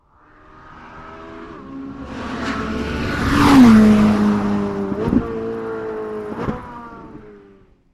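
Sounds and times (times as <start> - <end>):
458 Speciale performance driving heard from outside: 0.0 - 7.9.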